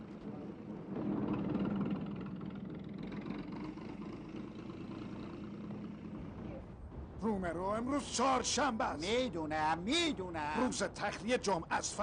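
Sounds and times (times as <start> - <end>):
truck engine idling with a low throaty rumble: 0.1 - 6.9
speech: 7.2 - 12.0.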